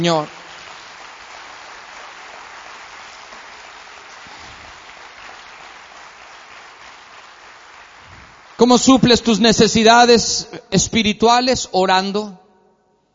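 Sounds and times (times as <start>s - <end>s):
speech: 0.0s - 0.4s, 8.6s - 12.4s
crowd of many hands applauding steadily: 0.0s - 9.3s.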